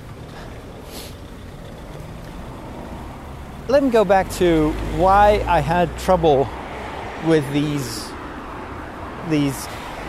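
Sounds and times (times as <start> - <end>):
car idling and rolling on a street: 0.0 - 10.0
brief airy hiss: 0.9 - 1.2
speech: 3.7 - 6.6, 7.2 - 8.1, 9.2 - 10.0.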